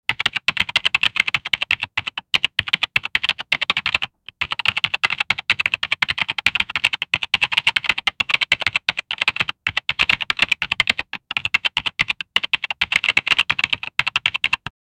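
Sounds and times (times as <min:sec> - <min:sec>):
clacky keyboard typing: 0:00.1 - 0:14.8.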